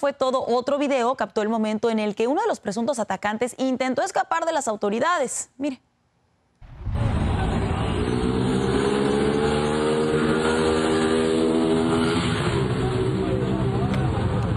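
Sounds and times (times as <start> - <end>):
speech: 0.0 - 5.9
motorcycle engine revving and accelerating: 7.0 - 14.4.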